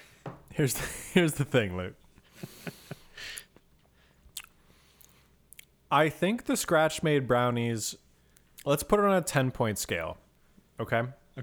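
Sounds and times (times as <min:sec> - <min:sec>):
speech: 0:00.6 - 0:02.8, 0:05.9 - 0:08.0, 0:08.6 - 0:10.2, 0:10.8 - 0:11.4
soft mouth clicks: 0:04.3 - 0:05.7
person sipping milk: 0:04.4 - 0:05.3.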